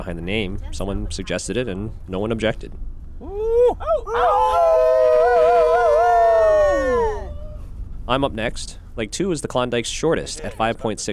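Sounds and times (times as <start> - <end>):
speech: 0.0 - 5.5, 8.1 - 11.1
people howling together like wolves to cheer on a teammate: 3.2 - 7.6.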